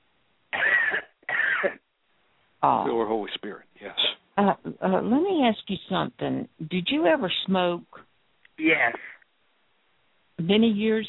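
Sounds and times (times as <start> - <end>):
deep forceful coughs: 0.5 - 1.8
speech: 2.6 - 8.0, 8.6 - 9.2, 10.4 - 11.0.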